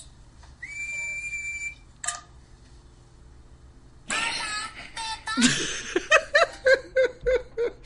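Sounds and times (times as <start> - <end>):
breathy blowing of someone learning to whistle: 0.6 - 1.9
rhythmic bouncing giggles: 4.1 - 7.8.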